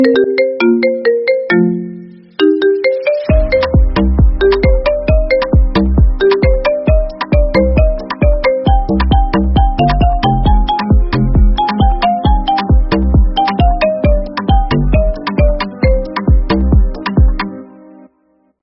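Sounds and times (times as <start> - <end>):
iPhone ringtone marimba remix: 0.0 - 17.5.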